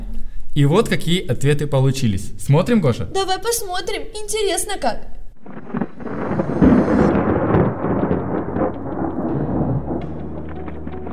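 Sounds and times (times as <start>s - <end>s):
speech: 0.6s - 5.6s
thunder rumbling in a thunderstorm: 5.4s - 11.1s.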